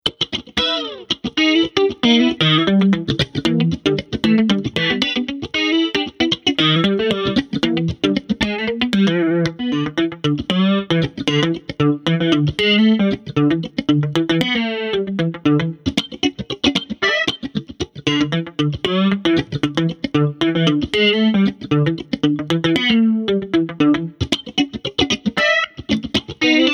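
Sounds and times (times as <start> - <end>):
funky jazz chorus solo on jazz guitar: 0.0 - 26.7.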